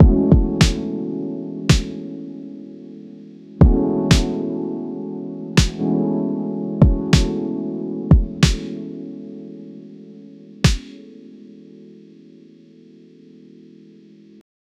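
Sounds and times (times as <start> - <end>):
punchy electro R&B drum: 0.0 - 0.8, 3.6 - 4.3, 8.1 - 8.6
clear punchy electro R&B music: 0.0 - 1.0, 1.7 - 2.0, 3.6 - 4.4, 5.6 - 5.9, 6.8 - 7.4, 8.1 - 8.8, 10.7 - 11.0.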